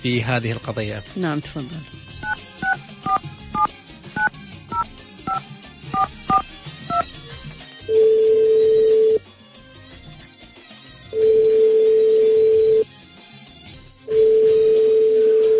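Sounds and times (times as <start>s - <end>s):
speech: 0.0s - 2.0s
touch-tone dialing beeps: 2.2s - 5.4s, 6.0s - 7.1s, 7.9s - 9.2s, 11.2s - 12.8s, 14.1s - 15.5s
telephone ringing tone: 6.0s - 7.0s, 7.9s - 9.2s, 11.2s - 12.8s, 14.1s - 15.5s.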